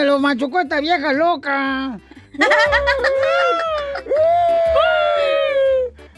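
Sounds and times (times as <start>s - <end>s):
speech: 0.0s - 5.4s
laughter: 2.3s - 5.6s
voice imitating crying: 2.4s - 5.9s.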